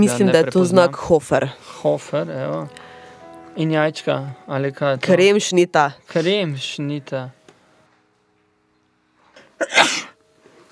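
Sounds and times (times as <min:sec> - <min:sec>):
speech: 0:00.0 - 0:02.8, 0:03.6 - 0:07.4, 0:09.6 - 0:10.1
sneeze: 0:09.4 - 0:10.2.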